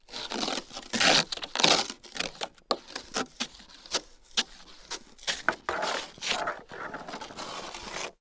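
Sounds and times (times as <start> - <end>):
ice scraper on window: 0.2 - 8.1.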